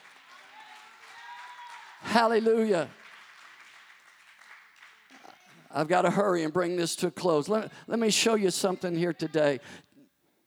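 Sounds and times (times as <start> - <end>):
congregation clapping: 0.0 - 7.6
speech: 2.0 - 3.0, 5.8 - 9.9.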